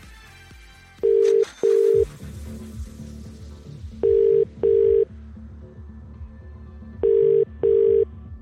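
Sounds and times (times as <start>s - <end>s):
telephone ringback tone while a number is called: 1.0s - 2.1s, 4.0s - 5.1s, 7.0s - 8.1s.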